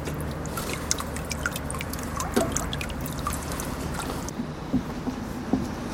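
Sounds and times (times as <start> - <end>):
soft watery trickling: 0.0 - 4.3
low steady rumble from harbour docks at the port of Tórshavn: 0.0 - 5.9.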